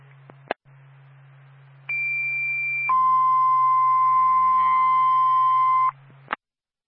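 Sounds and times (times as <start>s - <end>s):
low radio transmission hum: 0.0s - 6.4s
two-tone fire dispatch radio page: 1.9s - 6.0s.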